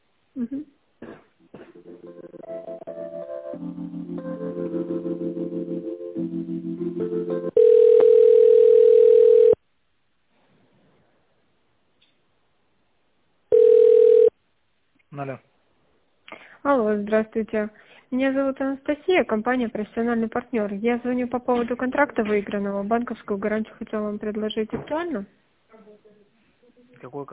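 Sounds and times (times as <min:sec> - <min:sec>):
speech: 0:00.4 - 0:00.8, 0:16.9 - 0:25.4, 0:27.0 - 0:27.3
telephone line tones while a call is transferred: 0:07.5 - 0:09.6, 0:13.5 - 0:14.3.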